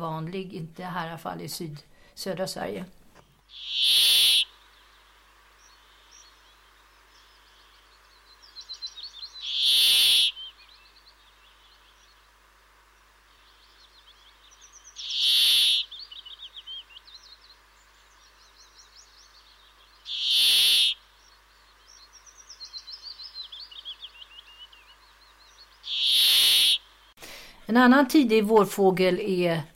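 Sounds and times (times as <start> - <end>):
speech: 0.0 - 4.3, 27.7 - 29.7
brambling giving loud harsh buzzy calls: 3.3 - 27.1
softer twittering bird calls: 3.5 - 4.6, 7.2 - 12.1, 13.5 - 26.9.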